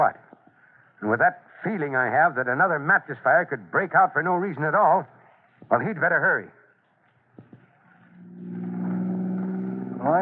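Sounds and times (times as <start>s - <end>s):
speech: 0.0s - 0.2s, 1.0s - 6.6s, 10.0s - 10.2s
car engine roaring as the vehicle speeds off: 8.0s - 10.2s.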